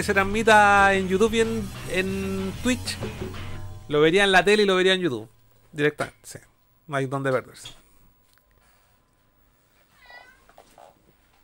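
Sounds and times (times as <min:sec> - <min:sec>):
speech: 0:00.0 - 0:07.8
faint hum: 0:03.9 - 0:11.4
cat meowing: 0:10.0 - 0:10.5.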